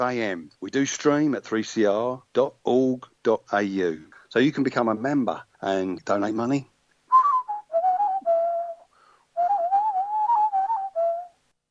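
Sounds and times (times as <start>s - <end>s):
speech: 0.0s - 6.7s
person whistling a lively wavering melody: 7.1s - 11.4s.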